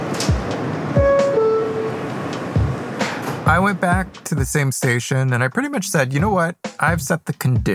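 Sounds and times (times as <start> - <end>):
New York City subway train rumbling along the tracks: 0.0 - 4.3
speech: 3.5 - 7.7.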